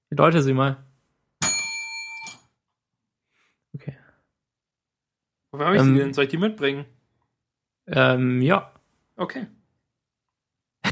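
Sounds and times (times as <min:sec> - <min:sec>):
speech: 0:00.1 - 0:00.9, 0:05.5 - 0:07.0, 0:07.9 - 0:09.6
small hand bell ringing: 0:01.4 - 0:02.4.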